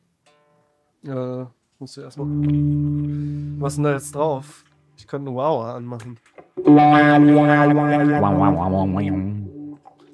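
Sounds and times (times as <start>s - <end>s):
speech: 1.0s - 9.2s
electric guitar through delay and reverb pedals playing sustained chords and bent notes: 2.2s - 4.6s, 6.5s - 10.1s.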